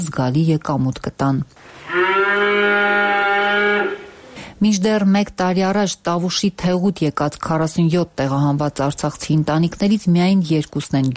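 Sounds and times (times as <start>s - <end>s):
speech: 0.0s - 1.8s, 4.6s - 11.1s
cow mooing on a village farm: 1.6s - 4.4s.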